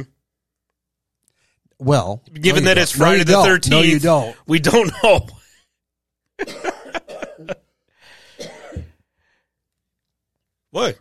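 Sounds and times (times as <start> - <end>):
speech: 1.8 - 5.4, 6.4 - 6.7, 10.8 - 10.9
man clearing throat with raspy cough: 6.4 - 7.7, 8.4 - 9.0
man coughing harshly: 6.4 - 9.1.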